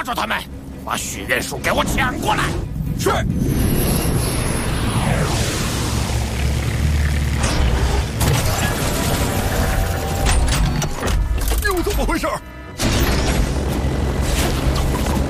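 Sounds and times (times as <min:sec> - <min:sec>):
speech: 0:00.0 - 0:03.6, 0:12.0 - 0:12.5
aircraft with left engine on fire roaring: 0:00.2 - 0:08.2
burning aircraft engine bangs and crackling bursts: 0:01.4 - 0:11.4, 0:12.8 - 0:15.2.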